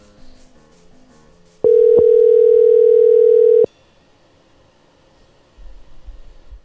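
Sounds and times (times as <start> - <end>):
telephone dial tone while placing a call: 1.7 - 3.7.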